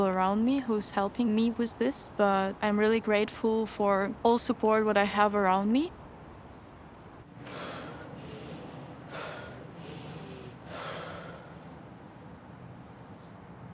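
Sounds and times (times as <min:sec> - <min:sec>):
speech: 0:00.0 - 0:06.0
deep breathy inhales: 0:07.4 - 0:12.0.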